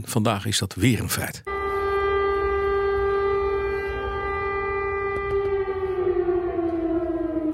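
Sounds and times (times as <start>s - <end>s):
speech: 0.0s - 1.5s
air raid siren wailing: 1.5s - 7.5s.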